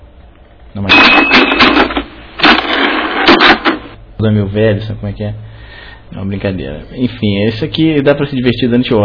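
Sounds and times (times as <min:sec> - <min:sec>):
rapid clattering keystrokes on a mechanical keyboard or typewriter: 0:00.9 - 0:04.0
speech: 0:04.2 - 0:09.0.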